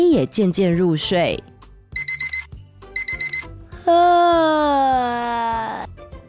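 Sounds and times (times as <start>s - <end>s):
speech: 0.0s - 1.5s, 3.9s - 5.8s
alarm clock beeping: 2.0s - 3.5s.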